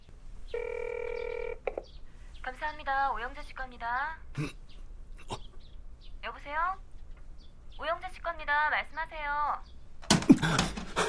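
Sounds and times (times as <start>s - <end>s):
telephone keypad dialing tones in a public phone booth: 0.6s - 1.7s
speech: 2.5s - 4.6s, 6.4s - 6.9s, 7.8s - 9.7s, 10.4s - 11.0s.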